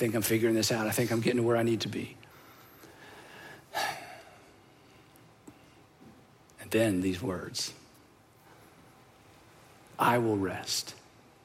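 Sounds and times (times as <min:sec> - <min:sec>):
speech: 0:00.0 - 0:02.3, 0:06.7 - 0:07.8, 0:10.0 - 0:11.0
deep breath in and out: 0:02.3 - 0:05.1.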